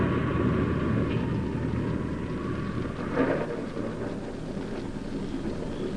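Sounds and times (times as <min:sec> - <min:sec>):
dense rain on a hillside: 0:00.0 - 0:05.9
gusting wind on a hillside: 0:00.0 - 0:05.9
thunder rumbling: 0:00.0 - 0:05.9.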